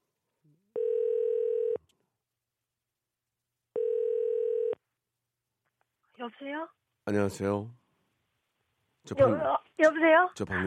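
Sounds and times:
buzzy ringing tone of an outgoing telephone call: 0:00.8 - 0:01.8, 0:03.8 - 0:04.8
speech: 0:06.2 - 0:07.8, 0:09.0 - 0:10.6.

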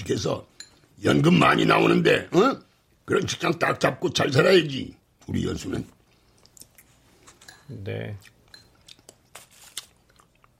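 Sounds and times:
speech: 0:00.1 - 0:06.0, 0:07.7 - 0:08.3
chewing food: 0:06.0 - 0:07.4, 0:08.2 - 0:10.5.

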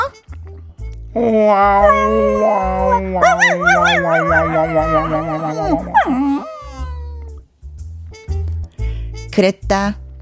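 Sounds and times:
speech: 0:01.2 - 0:06.5, 0:09.4 - 0:10.0
pet dog howling and whining: 0:01.2 - 0:07.2.

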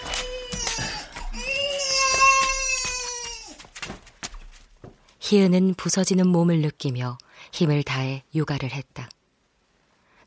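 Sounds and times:
baby crying: 0:00.0 - 0:03.6
speech: 0:05.3 - 0:09.2.

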